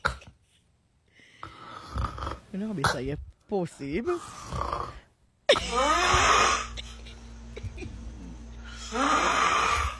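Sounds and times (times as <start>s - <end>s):
man snoring while asleep: 1.4s - 2.5s, 4.2s - 5.1s, 5.7s - 6.8s, 8.2s - 9.9s
speech: 2.5s - 5.0s, 5.7s - 6.2s.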